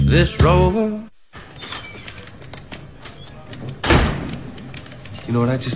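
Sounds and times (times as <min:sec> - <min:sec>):
speech: 0:00.2 - 0:00.9, 0:05.3 - 0:05.7
heavy door thump as it swings shut: 0:02.8 - 0:04.6.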